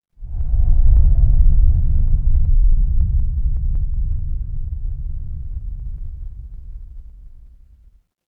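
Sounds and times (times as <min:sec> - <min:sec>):
horror wind whisper: 0:00.2 - 0:07.8.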